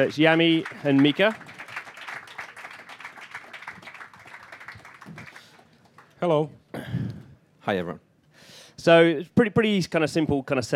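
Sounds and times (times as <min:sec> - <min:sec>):
speech: 0:00.0 - 0:01.5, 0:06.2 - 0:06.6, 0:07.7 - 0:08.0, 0:08.8 - 0:10.7
audience applause: 0:00.0 - 0:06.2.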